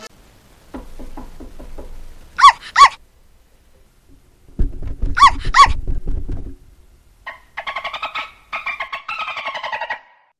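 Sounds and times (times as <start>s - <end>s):
rapid knocking on a door: 0.7s - 2.2s, 4.5s - 6.6s
dog barking: 2.4s - 3.0s, 5.2s - 5.8s.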